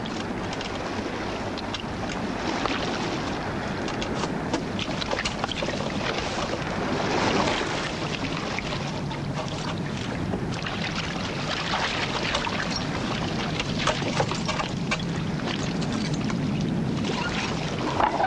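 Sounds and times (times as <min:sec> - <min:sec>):
water sloshing and splashing against a small boat: 0:00.0 - 0:18.2.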